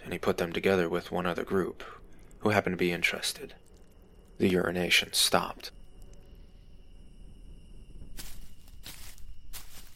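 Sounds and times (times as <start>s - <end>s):
faint high insect drone: 0.0s - 9.9s
speech: 0.1s - 3.6s, 4.4s - 5.8s
heavy footsteps crunching over loose ground across a campsite: 8.1s - 9.9s.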